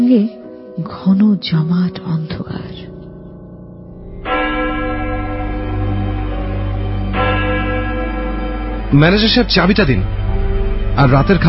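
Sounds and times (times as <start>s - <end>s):
speech: 0.1s - 2.9s, 8.9s - 10.2s, 11.0s - 11.4s
black wooden clock striking midnight: 2.9s - 9.8s.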